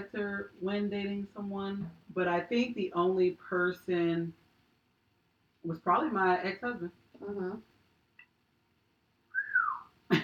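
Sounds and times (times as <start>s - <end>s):
speech: 0.0s - 4.4s, 5.6s - 7.7s
person whistling a rising then falling tone: 9.3s - 9.9s.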